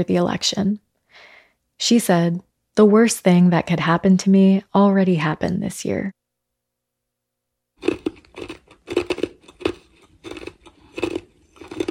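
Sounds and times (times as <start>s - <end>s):
speech: 0.0s - 6.2s, 7.8s - 9.0s
person chewing ice with crunching bites: 7.8s - 11.8s.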